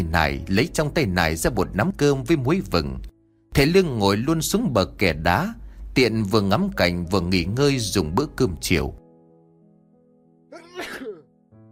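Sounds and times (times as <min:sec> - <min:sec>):
speech: 0:00.0 - 0:09.0
man sneezing on a stone embankment by the water at dusk: 0:10.5 - 0:11.3.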